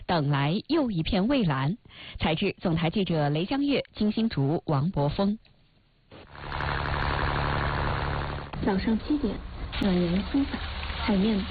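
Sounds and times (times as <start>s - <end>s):
speech: 0.1s - 5.5s, 8.6s - 11.4s
boat motor starting up and droning: 6.2s - 11.3s.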